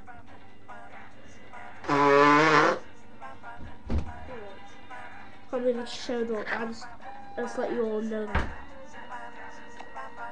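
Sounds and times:
person blowing nose with an elephant-like honk: 0:01.8 - 0:02.9
short thump: 0:03.6 - 0:04.2
speech: 0:05.6 - 0:08.6.

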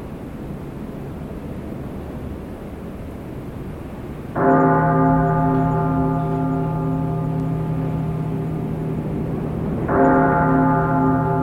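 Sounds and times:
deep church bell tolling: 0:04.4 - 0:11.4.

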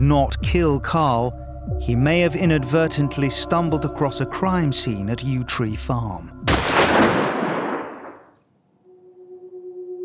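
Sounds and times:
speech: 0:00.0 - 0:06.4
gunshot: 0:06.5 - 0:08.3.

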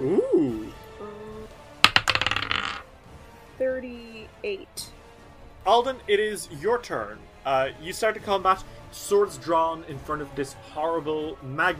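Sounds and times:
dice clattering across a hard surface: 0:01.8 - 0:02.8
speech: 0:04.5 - 0:05.0, 0:05.6 - 0:11.7.

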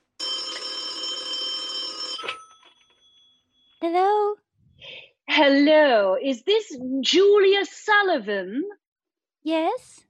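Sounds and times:
telephone bell ringing with a bright metallic jangle: 0:00.1 - 0:03.8
speech: 0:03.8 - 0:04.4, 0:05.4 - 0:08.8, 0:09.4 - 0:10.0.

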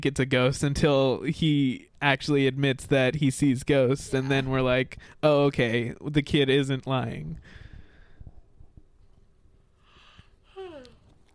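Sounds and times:
speech: 0:00.0 - 0:07.6
quiet yawn ending in a voiced sigh: 0:10.1 - 0:11.0.

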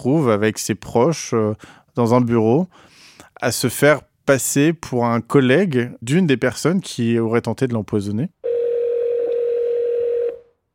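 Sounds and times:
speech: 0:00.0 - 0:08.4
steady telephone dialing tone on a phone call: 0:08.4 - 0:10.5.

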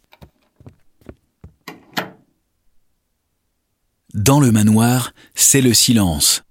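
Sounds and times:
soft knocks and thumps of a door handled quietly: 0:00.1 - 0:02.2
speech: 0:04.2 - 0:06.4.

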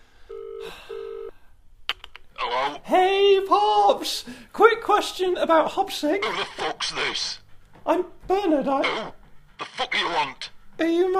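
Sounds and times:
electronic telephone tones heard through the line: 0:00.3 - 0:01.3
speech: 0:02.5 - 0:11.1.

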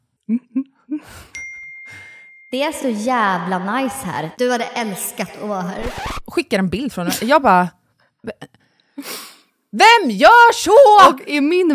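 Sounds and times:
phone text message notification chime: 0:01.4 - 0:02.7
speech: 0:02.5 - 0:11.7.

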